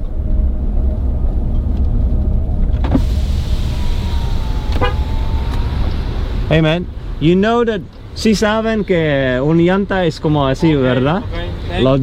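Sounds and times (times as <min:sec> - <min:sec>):
low rumble of road noise inside a moving vehicle: 0:00.0 - 0:12.0
car horn toots: 0:04.6 - 0:05.9
speech: 0:06.5 - 0:12.0.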